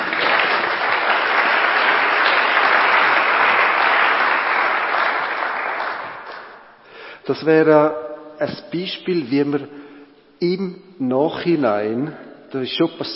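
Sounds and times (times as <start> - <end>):
audience applause of many hands clapping: 0.0 - 6.7
speech: 7.3 - 9.8, 10.4 - 13.1.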